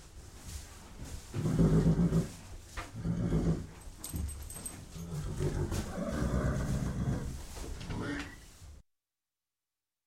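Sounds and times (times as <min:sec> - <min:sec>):
restless horse snorting and blowing in a stable: 0:01.3 - 0:03.8, 0:05.0 - 0:08.4.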